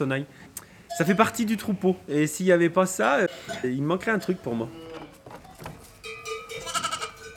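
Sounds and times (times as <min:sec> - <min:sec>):
speech: 0:00.0 - 0:05.0
sonailles neck bells on ewes clanking: 0:03.4 - 0:07.3
ewes bleating: 0:04.3 - 0:05.2, 0:06.5 - 0:07.3.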